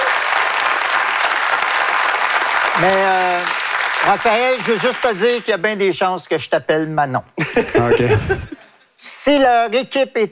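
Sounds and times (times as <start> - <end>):
audience applause greeting a new director joining the team: 0.0 - 5.5
speech: 2.8 - 10.2
laughter: 7.4 - 8.6.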